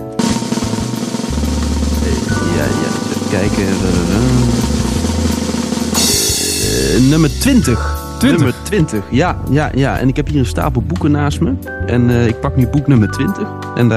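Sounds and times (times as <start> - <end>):
loud sustained drumroll sound effect: 0.0 - 8.5
bright cymbal crash: 0.1 - 8.2
speech: 2.6 - 4.7, 6.8 - 13.9.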